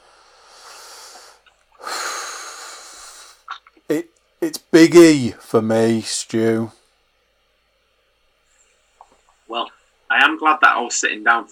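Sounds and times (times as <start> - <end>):
deep breaths drawn slowly: 0.0 - 3.5
speech: 3.9 - 6.8, 10.4 - 11.5.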